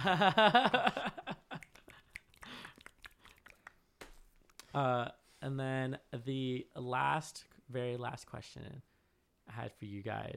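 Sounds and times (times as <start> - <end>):
speech: 0.0 - 1.1, 4.7 - 8.9, 9.5 - 10.3
people laughing: 0.0 - 1.6.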